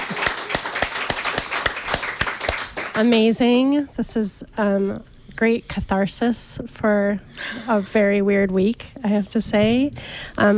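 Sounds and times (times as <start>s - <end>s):
audience applause with rhythmic sharp claps: 0.0s - 3.2s
speech: 3.0s - 10.5s.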